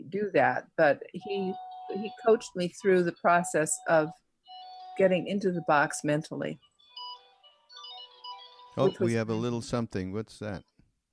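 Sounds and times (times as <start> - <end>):
speech: 0.1 - 4.2, 5.0 - 6.7, 8.8 - 10.7
mobile phone ringtone with bright melodic electronic tune: 1.2 - 9.3.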